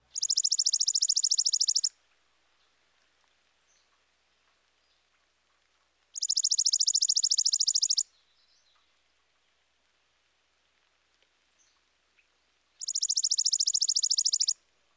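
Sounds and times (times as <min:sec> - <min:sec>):
chipping sparrow singing a rapid dry mechanical trill: 0:00.1 - 0:02.0, 0:06.1 - 0:08.9, 0:12.8 - 0:14.6.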